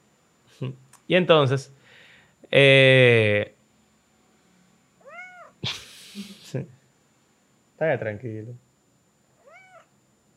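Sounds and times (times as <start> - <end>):
speech: 0.6 - 1.8, 2.5 - 3.6, 5.6 - 6.8, 7.8 - 8.6
cat meowing: 5.0 - 5.6, 9.4 - 9.9
laughter: 5.6 - 6.7.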